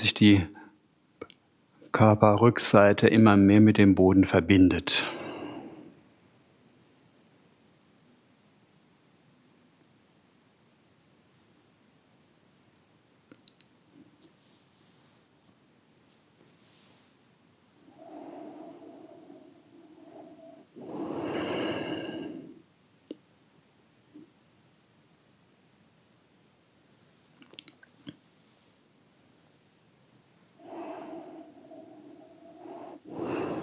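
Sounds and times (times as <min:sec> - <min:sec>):
speech: 0:00.0 - 0:00.6, 0:01.9 - 0:05.2
slow deep breathing during a guided relaxation exercise: 0:05.0 - 0:06.1, 0:17.8 - 0:22.7, 0:30.5 - 0:33.6
small clicks: 0:13.3 - 0:13.7, 0:27.4 - 0:28.2.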